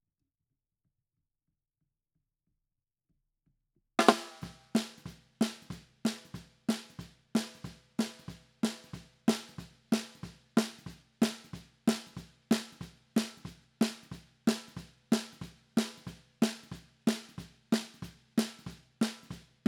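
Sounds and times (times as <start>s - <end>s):
snare drum bottom: 4.0s - 19.6s.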